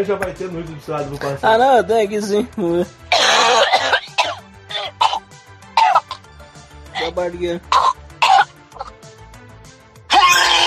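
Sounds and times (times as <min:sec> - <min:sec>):
speech: 0:00.0 - 0:03.0, 0:07.2 - 0:07.8
person coughing: 0:03.1 - 0:05.2, 0:05.8 - 0:06.3, 0:07.0 - 0:07.2, 0:07.8 - 0:08.9.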